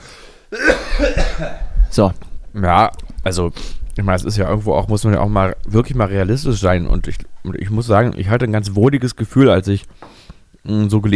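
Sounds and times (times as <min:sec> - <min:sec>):
person coughing harshly: 0:00.5 - 0:01.8
speech: 0:01.0 - 0:11.1.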